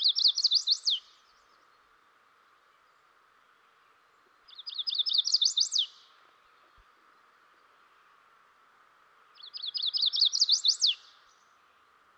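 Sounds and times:
Chestnut-sided warbler singing: 0:00.0 - 0:01.7, 0:04.5 - 0:06.7, 0:09.4 - 0:11.4.

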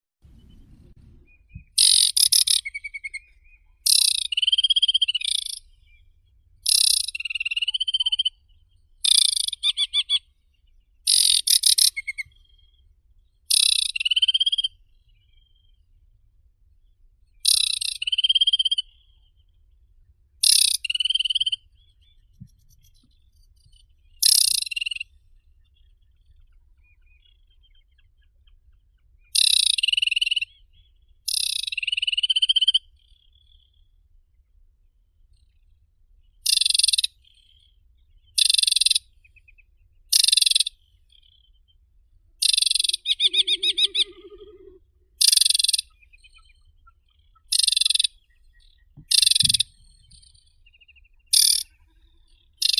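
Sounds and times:
Acrocephalus paludicola aquatic warbler singing: 0:00.3 - 0:08.3, 0:09.0 - 0:12.6, 0:13.5 - 0:15.5, 0:17.4 - 0:19.2, 0:20.4 - 0:25.1, 0:29.3 - 0:33.7, 0:36.4 - 0:41.6, 0:42.4 - 0:52.7.

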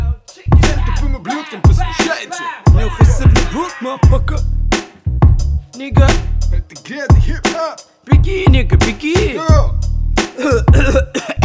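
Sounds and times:
low droning bass: 0:00.0 - 0:02.0, 0:02.7 - 0:07.4, 0:08.2 - 0:11.4
speech: 0:01.2 - 0:04.6, 0:05.8 - 0:11.4
person coughing: 0:10.4 - 0:11.4.

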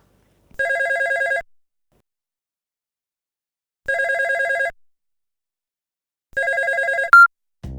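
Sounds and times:
telephone ringing with electronic trills: 0:00.6 - 0:01.4, 0:03.9 - 0:04.7, 0:06.4 - 0:07.3.

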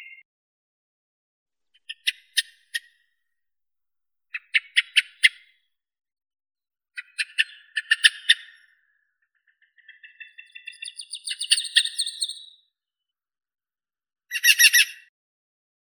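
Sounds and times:
eyebrowed thrush Turdus obscurus calling: 0:01.9 - 0:02.8, 0:07.0 - 0:08.5, 0:10.0 - 0:12.4, 0:14.3 - 0:15.0.

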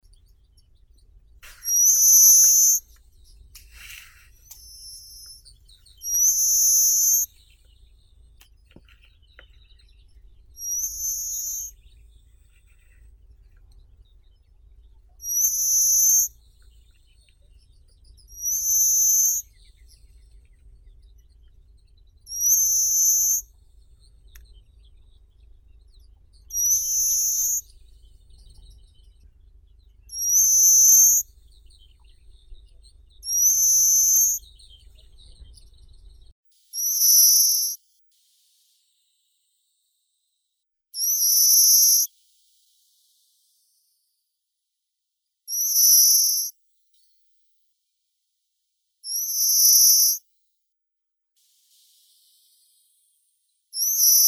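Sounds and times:
short-toed sparrow Carpospiza brachydactyla: 0:00.0 - 0:39.9, 0:41.0 - 0:44.3, 0:45.5 - 0:47.3, 0:49.0 - 0:50.4, 0:51.4 - 0:54.2.

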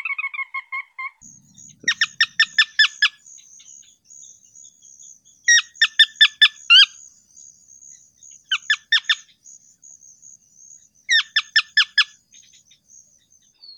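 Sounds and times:
Porzana carolina calling: 0:01.2 - 0:13.4.

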